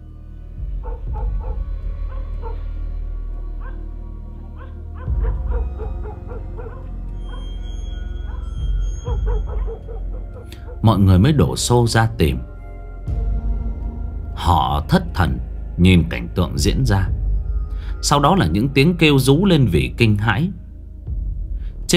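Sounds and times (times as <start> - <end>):
low rumble: 0.0 - 21.9
dogs barking: 0.8 - 2.8, 3.6 - 11.0
speech: 10.8 - 12.5, 14.9 - 17.2, 18.0 - 20.6.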